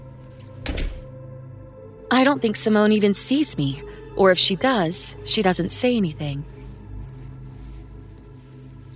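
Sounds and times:
door closing shut: 0.5 - 1.2
speech: 2.1 - 6.6.

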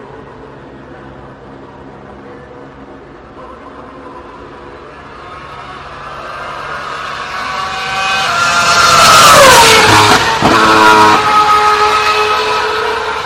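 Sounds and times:
retro V8 race car engine roaring past: 4.8 - 13.2.

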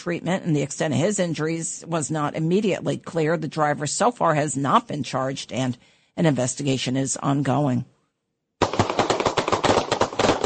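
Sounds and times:
speech: 0.0 - 8.0
rapid gunfire: 8.6 - 10.4.

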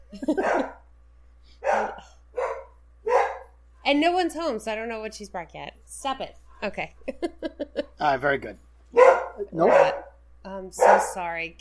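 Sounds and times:
speech: 0.1 - 0.5, 3.9 - 11.5
dog barking: 0.3 - 0.8, 1.6 - 3.6, 8.9 - 10.2, 10.8 - 11.2.

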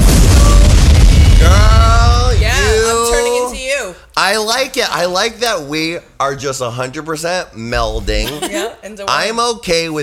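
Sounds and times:
explosion sound effect: 0.0 - 3.1
speech: 4.3 - 10.0.

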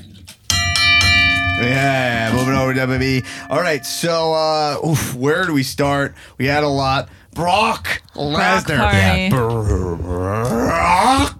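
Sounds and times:
bright metallic bell ringing: 0.5 - 4.8
speech: 1.6 - 11.3.

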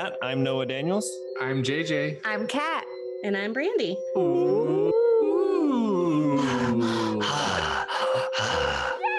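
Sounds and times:
speech: 0.0 - 5.1
low drawn-out voiced moan: 4.2 - 9.1
voice imitating deep heavy breathing: 4.2 - 9.1.

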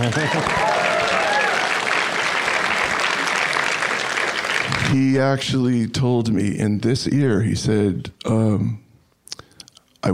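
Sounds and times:
speech: 0.0 - 0.7, 4.9 - 8.8
audience clapping: 0.0 - 5.4.

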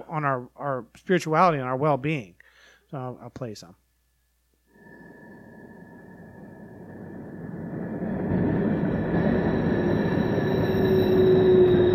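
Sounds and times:
speech: 0.1 - 3.8
freight train brakes squealing: 4.8 - 11.9.

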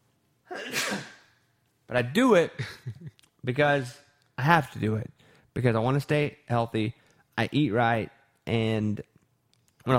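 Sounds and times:
person sneezing: 0.5 - 1.4
speech: 1.9 - 9.1.

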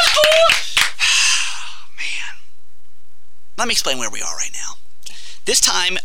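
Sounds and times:
scattered cheers: 0.0 - 0.8
studio audience clapping: 0.0 - 1.1
speech: 3.6 - 4.8, 5.5 - 6.0.

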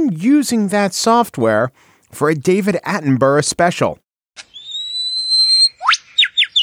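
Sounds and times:
speech: 0.0 - 4.5
bird singing in a forest: 4.5 - 6.6.

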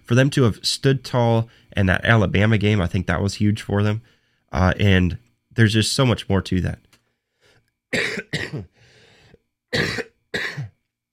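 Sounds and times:
speech: 0.1 - 6.8, 7.9 - 8.7, 9.7 - 10.7
coughing fit: 7.9 - 8.8, 9.7 - 10.8
raspy wheezing inhale: 8.7 - 9.4.

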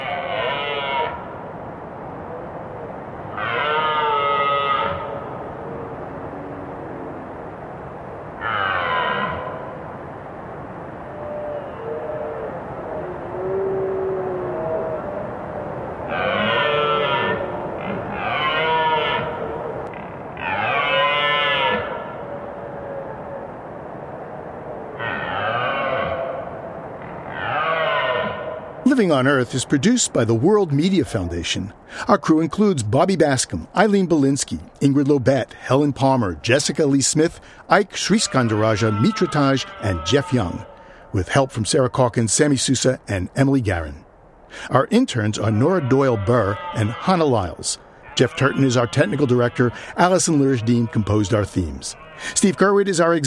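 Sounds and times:
red deer stags roaring during rut: 0.0 - 1.2, 3.3 - 7.2, 8.4 - 9.7, 11.1 - 15.3, 16.1 - 22.2, 25.0 - 29.5, 38.0 - 41.4, 45.2 - 53.2
speech: 29.0 - 53.2.

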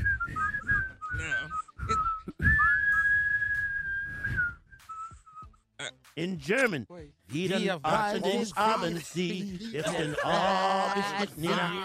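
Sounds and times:
person whistling a short melodic phrase: 0.0 - 5.6
speech: 6.2 - 11.8
laughter: 7.9 - 11.8.

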